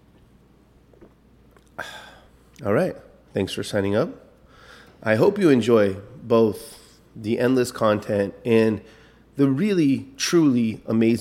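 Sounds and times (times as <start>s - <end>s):
person sipping from a can of soda: 0.9s - 2.6s
speech: 2.6s - 4.2s, 5.0s - 11.1s.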